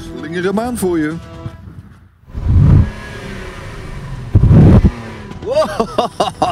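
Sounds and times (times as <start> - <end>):
speech: 0.3 - 1.3, 5.7 - 6.4
luxury limousine engine revving: 2.3 - 5.7
laughter: 5.4 - 6.4.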